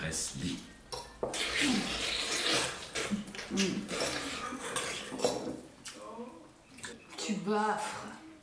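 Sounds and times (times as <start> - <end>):
speech: 0.1 - 4.1, 7.5 - 8.1
dishes and cutlery clattering as a plate is set down on a table: 3.9 - 5.6.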